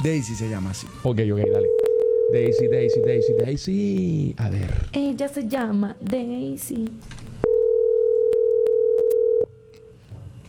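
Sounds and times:
speech: 0.0 - 7.3
faint noise: 0.0 - 10.4
telephone ringback tone on an outgoing call: 1.4 - 3.4, 7.4 - 9.5.

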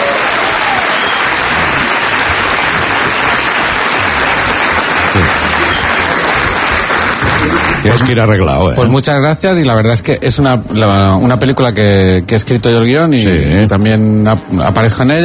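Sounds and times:
audience applause: 0.0 - 8.4
speech: 7.8 - 15.2.

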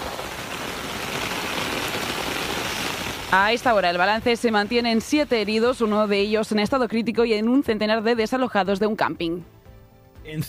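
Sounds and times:
heavy rain pouring: 0.0 - 6.8
speech: 3.3 - 9.5, 10.2 - 10.4.

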